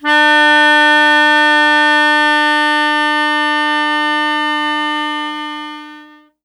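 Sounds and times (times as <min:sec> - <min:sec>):
melodica D note hit: 0:00.0 - 0:06.4.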